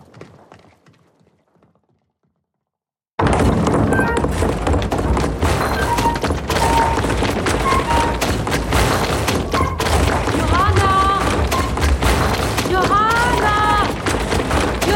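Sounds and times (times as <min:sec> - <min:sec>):
paper mill stamping hammers pounding rags: 0:03.2 - 0:14.9.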